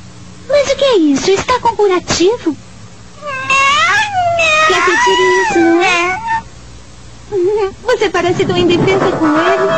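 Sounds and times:
speech: 0:00.8 - 0:02.6, 0:04.7 - 0:06.2, 0:07.3 - 0:09.7
black female kitten meowing: 0:03.2 - 0:06.5.

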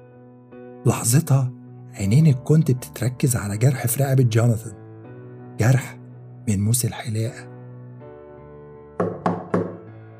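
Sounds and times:
low steady hum of music: 0:00.0 - 0:10.1
speech: 0:00.8 - 0:04.8, 0:05.6 - 0:07.5
firm knocking on a door: 0:09.0 - 0:09.9.

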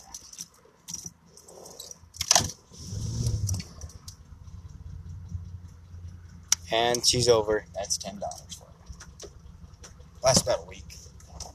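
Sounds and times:
bunch of car keys jangling: 0:00.0 - 0:02.4
speech: 0:06.7 - 0:08.5, 0:10.3 - 0:10.8.

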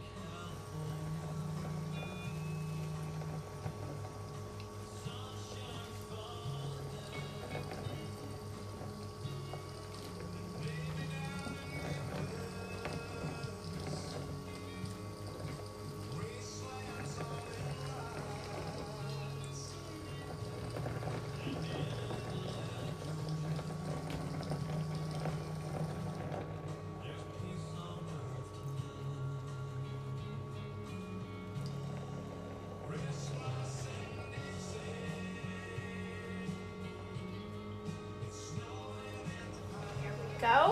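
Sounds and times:
hot water pouring: 0:00.0 - 0:40.6
low hum: 0:00.0 - 0:40.6.

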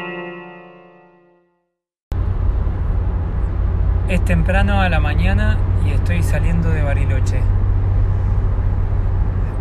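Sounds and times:
continuous car tire hum: 0:02.1 - 0:09.6
deep car engine rumble: 0:02.1 - 0:09.6
road noise inside a car driving along a lakeside road: 0:02.1 - 0:09.6
speech: 0:04.1 - 0:07.7.

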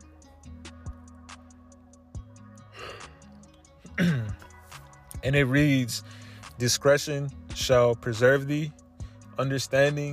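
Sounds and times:
yawn with breathy inhale and voiced falling groan: 0:02.7 - 0:03.2
speech: 0:04.0 - 0:04.4, 0:05.2 - 0:08.8, 0:09.4 - 0:10.1.

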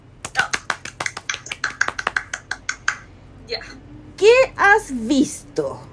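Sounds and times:
hand clapping as a welcome: 0:00.2 - 0:03.1
speech: 0:03.5 - 0:05.9.

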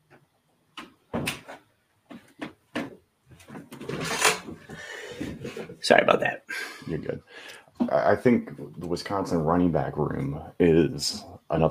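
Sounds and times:
door closing: 0:01.1 - 0:01.6, 0:03.7 - 0:04.7
rattling and scraping handling noise: 0:01.2 - 0:05.8
speech: 0:05.8 - 0:11.6.

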